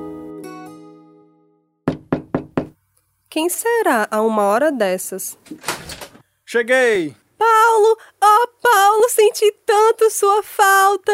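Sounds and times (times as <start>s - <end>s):
firm knocks on a door: 1.9s - 2.8s
speech: 3.3s - 5.9s, 6.5s - 11.1s.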